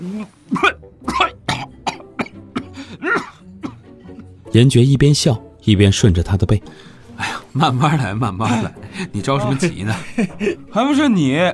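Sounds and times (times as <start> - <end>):
man coughing after choking on food: 0.1 - 4.2
speech: 0.2 - 0.8, 4.5 - 11.5
laughter: 7.6 - 10.8.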